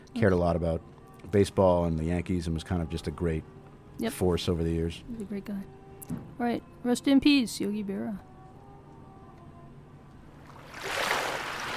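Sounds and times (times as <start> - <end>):
speech: 0.1 - 8.3
flowing water rushing: 10.5 - 11.7.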